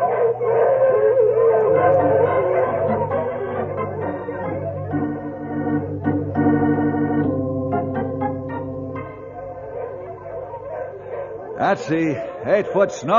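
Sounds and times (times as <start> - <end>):
sled dogs yipping and barking: 0.0 - 5.3, 9.1 - 13.0
team of sled dogs howling in chorus: 0.0 - 6.9, 8.1 - 13.1
speech: 11.7 - 13.1.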